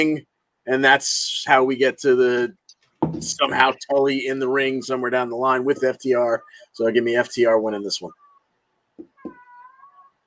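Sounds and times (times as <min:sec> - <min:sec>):
speech: 0:00.0 - 0:08.2
cat chirping and meowing: 0:08.1 - 0:10.2.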